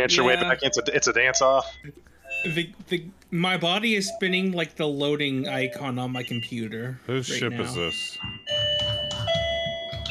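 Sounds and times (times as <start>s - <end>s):
speech: 0.0s - 8.6s
dense rhythmic low background with repeating pulses: 0.0s - 10.0s
doorbell with sustained electronic chime tones: 2.3s - 2.7s, 7.6s - 10.0s.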